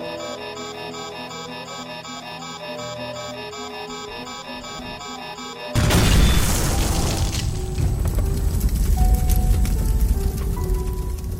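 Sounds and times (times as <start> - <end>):
brief electronic tone: 0.0 - 6.5
crash-explosion of an airplane carrying 16 people in Zambia: 5.8 - 10.1
crackling debris: 5.8 - 11.3.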